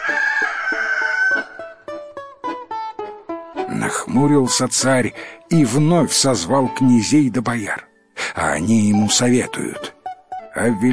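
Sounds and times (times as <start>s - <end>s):
rooster crowing: 0.0s - 1.7s
speech: 3.8s - 10.0s, 10.6s - 10.9s.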